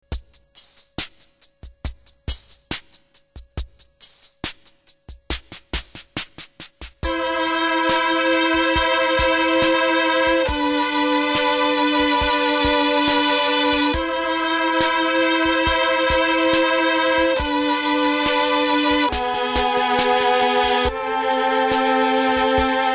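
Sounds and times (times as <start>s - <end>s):
violins: 7.0s - 22.9s.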